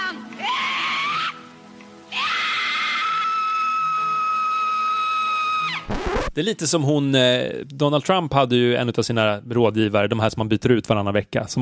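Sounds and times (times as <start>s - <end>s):
woman screaming in a played recording: 0.4s - 1.5s, 2.1s - 5.8s
speech: 6.4s - 11.6s.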